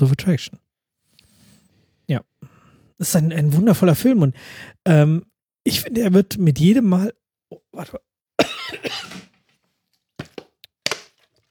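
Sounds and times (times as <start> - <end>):
speech: 0.0 - 0.6, 2.1 - 2.3, 3.0 - 8.1
short cough: 8.4 - 9.3.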